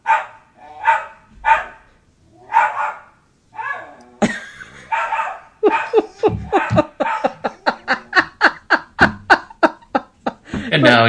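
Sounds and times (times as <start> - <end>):
dog barking: 0.0 - 1.9, 2.5 - 4.0, 4.9 - 7.8
laughter: 4.2 - 5.0, 5.6 - 11.0.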